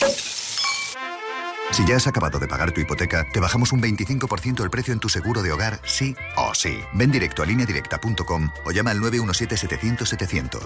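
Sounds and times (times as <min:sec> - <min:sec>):
thick bone-in rib steak sizzling in a frying pan: 0:00.0 - 0:01.0
speech: 0:01.7 - 0:10.6.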